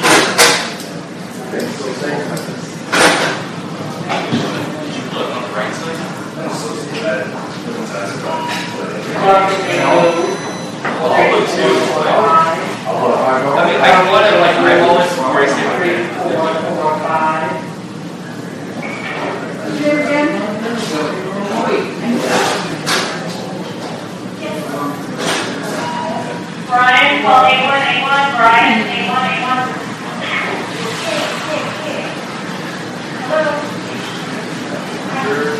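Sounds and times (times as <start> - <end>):
steady murmur of a hospital emergency room: 0.0 - 35.5
several people talking in a hospital emergency room: 1.3 - 32.4, 33.1 - 35.5
brief high tone: 9.2 - 11.2.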